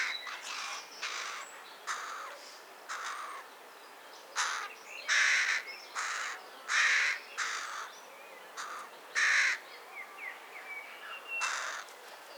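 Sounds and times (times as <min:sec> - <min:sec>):
carrion crow Corvus corone cawing: 0:02.9 - 0:03.4, 0:04.4 - 0:07.9, 0:08.6 - 0:09.6, 0:11.4 - 0:11.9.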